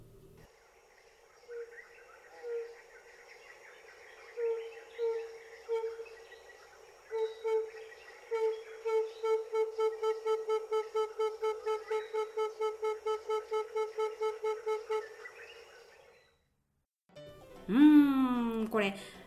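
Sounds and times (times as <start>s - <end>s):
insects chirping: 0.5s - 16.3s
tambourine dove cooing in Uganda: 7.2s - 15.3s
speech: 17.7s - 17.9s, 18.7s - 19.2s.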